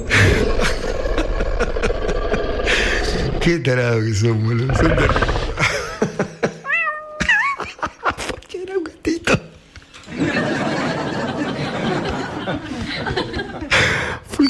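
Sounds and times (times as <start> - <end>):
people laughing: 0.1 - 3.4, 4.7 - 6.7, 7.2 - 8.4, 10.1 - 14.2
speech: 3.5 - 5.3
kitten giving short high-pitched meows: 6.7 - 7.2.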